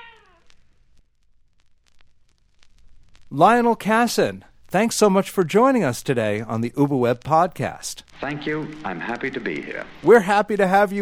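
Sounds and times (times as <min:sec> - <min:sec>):
cat meowing: 0:00.0 - 0:00.5
faint crackling static: 0:00.0 - 0:11.0
speech: 0:03.3 - 0:11.0.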